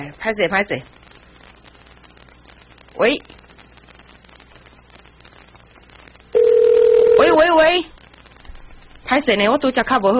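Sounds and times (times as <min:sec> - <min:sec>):
speech: 0:00.1 - 0:01.0, 0:03.0 - 0:03.4, 0:07.4 - 0:07.9, 0:09.1 - 0:10.1
telephone dial tone while placing a phone call: 0:06.4 - 0:07.3.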